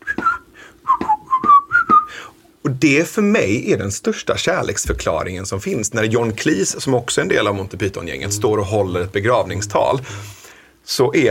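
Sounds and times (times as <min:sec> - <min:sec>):
whistled melody with pitch slides: 0:00.0 - 0:02.1
speech: 0:02.7 - 0:11.2.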